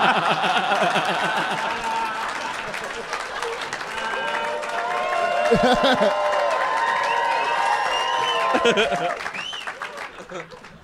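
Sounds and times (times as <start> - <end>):
laughter: 0.0 - 6.5, 8.2 - 10.8
crowd cheering and whooping: 0.0 - 10.3
audience applause: 0.0 - 10.8
speech: 5.5 - 6.2, 8.6 - 9.4.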